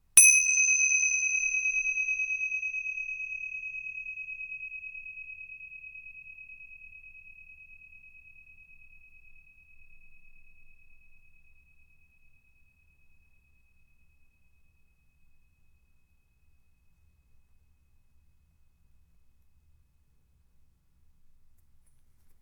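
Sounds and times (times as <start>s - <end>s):
tingsha cymbals: 0.0s - 14.0s.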